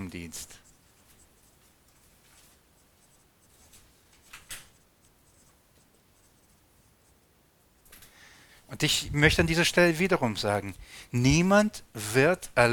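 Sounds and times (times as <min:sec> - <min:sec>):
speech: 0:00.1 - 0:00.6, 0:08.7 - 0:12.7
pen scratching and scraping across paper: 0:00.3 - 0:07.3.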